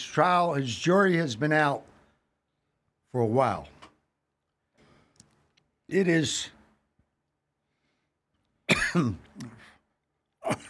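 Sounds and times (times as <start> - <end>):
speech: 0.1 - 1.9, 3.1 - 3.8, 5.9 - 6.6, 8.9 - 9.6, 10.5 - 10.6
dry hacking cough: 8.7 - 9.8, 10.4 - 10.6.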